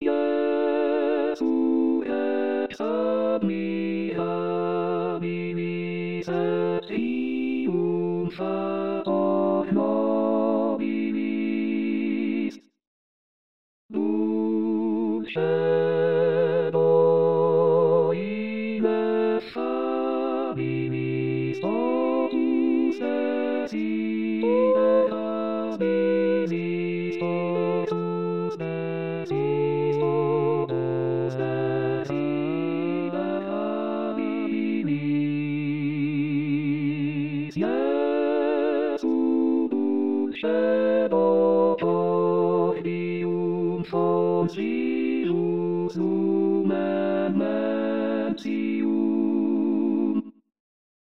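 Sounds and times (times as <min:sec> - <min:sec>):
choir singing: 0:00.0 - 0:12.6, 0:13.9 - 0:50.3.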